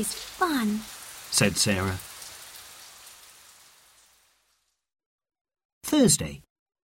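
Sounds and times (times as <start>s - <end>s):
speech: 0.0s - 2.1s, 6.0s - 6.5s
steady rain: 0.0s - 4.9s.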